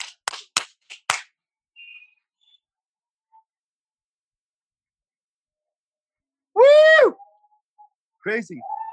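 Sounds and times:
scattered claps: 0.0 - 1.4
speech: 8.2 - 8.8.

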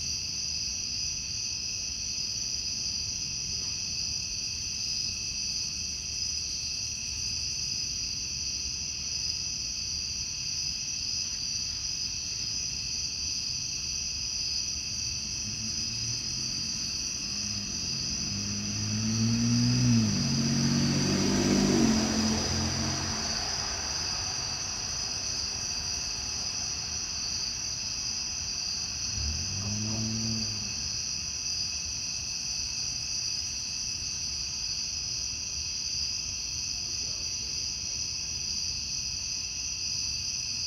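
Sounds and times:
cicadas droning in summer: 0.0 - 40.6
car passing: 14.7 - 33.8.

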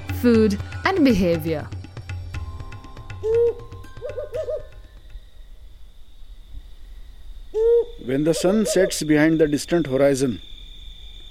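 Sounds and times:
speech: 0.2 - 1.8, 8.1 - 10.5
owl hooting at night: 3.2 - 5.6, 7.4 - 9.4.

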